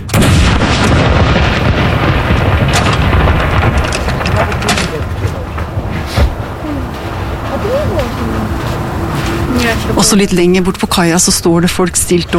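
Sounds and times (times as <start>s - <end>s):
salute cannon shot booming with rolling echo: 0.1s - 6.5s
indistinct voices outdoors: 3.7s - 12.3s
speech: 10.1s - 12.3s.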